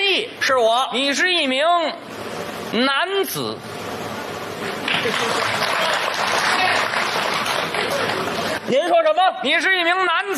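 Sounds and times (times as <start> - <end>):
speech: 0.5 - 3.8, 4.9 - 6.8, 8.7 - 10.3
audience applause: 4.8 - 8.6.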